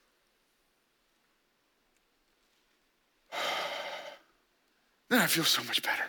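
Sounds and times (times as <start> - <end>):
big deep breath during a morning breathing exercise: 3.3 - 4.4
speech: 5.2 - 6.0.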